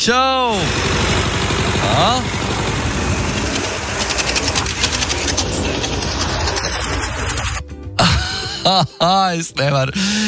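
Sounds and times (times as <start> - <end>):
speech: 0.0 - 1.0, 1.8 - 2.6, 8.6 - 10.2
tractor engine pulling a potato digger during potato harvest: 0.0 - 8.7
potato digger rhythmic mechanical clattering: 0.7 - 7.8.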